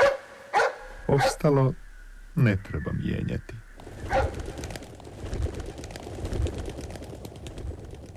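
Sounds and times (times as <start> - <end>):
birds cooing in low soft repeating calls: 0.8 - 5.8
speech: 1.1 - 1.8, 2.4 - 4.3.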